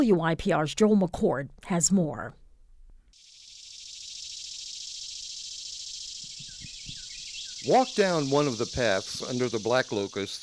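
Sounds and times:
speech: 0:00.0 - 0:02.4, 0:07.6 - 0:10.4
dense cicada drone in woods: 0:03.2 - 0:10.4
faint bird chirps: 0:03.2 - 0:10.4.

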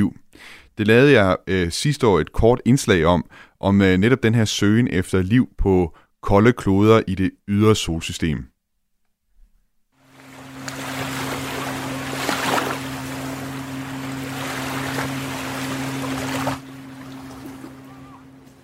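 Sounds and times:
speech: 0:00.0 - 0:08.5
low droning hum: 0:10.0 - 0:18.6
waves washing on the beach at Tankroen: 0:10.0 - 0:18.6.

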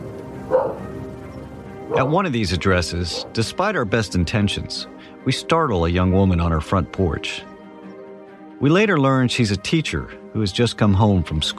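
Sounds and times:
dog barking: 0:00.4 - 0:01.0, 0:01.9 - 0:02.2, 0:03.0 - 0:03.4
speech: 0:01.9 - 0:07.5, 0:08.6 - 0:11.5.

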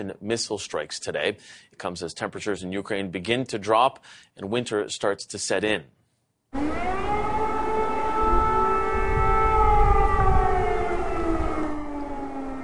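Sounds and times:
speech: 0:00.0 - 0:07.0
air raid siren wailing over Kiev Ukraine: 0:06.6 - 0:12.6.

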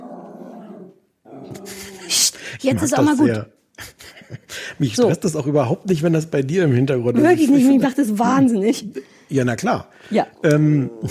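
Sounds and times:
two old dogs growling and snarling in a scuffle: 0:00.0 - 0:02.1
laughter: 0:01.5 - 0:05.1, 0:10.5 - 0:11.1
speech: 0:01.6 - 0:03.9, 0:04.8 - 0:11.1.

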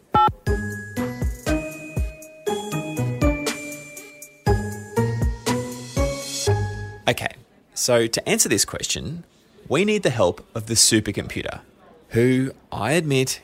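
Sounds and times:
bright tinkling phone theme jingle with bell-like chiming notes: 0:00.5 - 0:07.0
speech: 0:07.1 - 0:13.4.

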